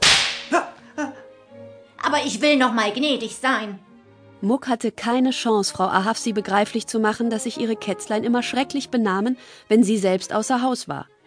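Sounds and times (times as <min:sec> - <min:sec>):
whip crack: 0:00.0 - 0:00.6
speech: 0:02.1 - 0:11.1.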